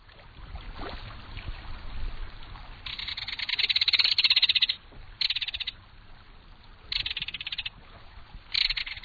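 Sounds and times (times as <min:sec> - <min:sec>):
belted kingfisher harsh metallic rattling call: 0:02.8 - 0:05.8, 0:06.9 - 0:07.8, 0:08.5 - 0:09.0.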